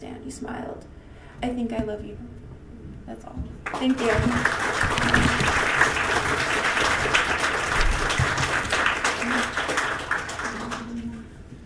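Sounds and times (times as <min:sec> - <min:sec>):
speech: 0:00.2 - 0:02.4, 0:03.1 - 0:06.0
applause from a sizable audience: 0:03.6 - 0:11.2.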